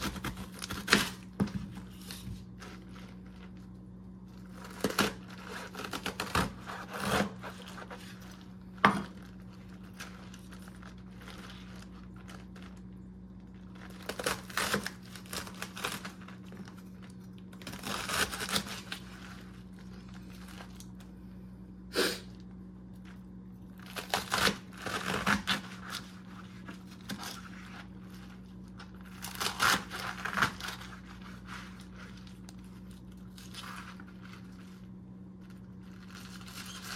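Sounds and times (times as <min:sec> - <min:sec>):
knife cutting up napa cabbage in a kitchen: 0:00.0 - 0:03.3, 0:04.4 - 0:12.0, 0:13.9 - 0:16.9, 0:17.6 - 0:20.8, 0:23.8 - 0:34.6
low steady hum: 0:00.0 - 0:36.9.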